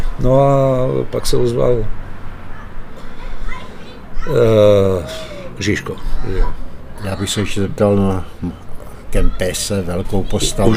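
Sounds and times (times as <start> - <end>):
speech: 0.2 - 2.0, 4.3 - 10.7
boys chattering while playing football outdoors: 2.2 - 10.7
boy shrieking while playing football on an outdoor pitch: 3.2 - 6.6, 10.4 - 10.7.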